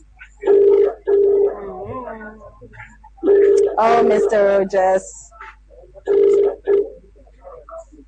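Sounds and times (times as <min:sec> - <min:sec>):
faint murmuring: 0:00.0 - 0:08.0
phone ringback tone on an outgoing call: 0:00.5 - 0:01.5, 0:03.2 - 0:04.4, 0:06.1 - 0:06.9
speech: 0:02.3 - 0:03.0, 0:03.8 - 0:05.3.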